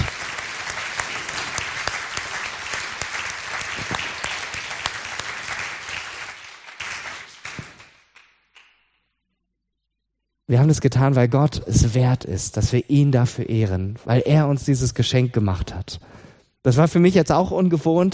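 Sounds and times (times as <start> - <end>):
audience applauding: 0.0 - 8.8
speech: 10.5 - 18.1.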